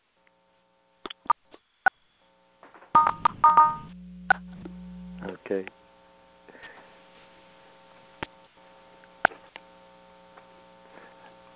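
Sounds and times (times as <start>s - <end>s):
phone keypad beeps from callers pressing star six in a virtual meeting: 3.0s - 3.9s
low steady hum: 3.0s - 6.6s
speech: 5.5s - 5.8s.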